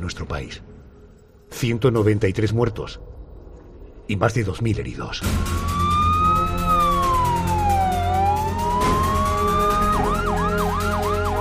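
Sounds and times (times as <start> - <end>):
speech: 0.0 - 0.7, 1.5 - 3.1, 4.1 - 5.7
ambulance siren wailing and yelping: 5.2 - 11.3.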